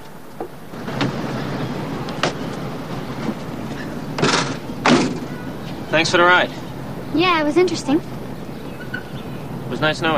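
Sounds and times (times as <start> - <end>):
car engine idling: 0.6 - 10.1
car doors opening and slamming shut: 0.8 - 5.6
speech: 6.0 - 8.1, 9.8 - 10.1.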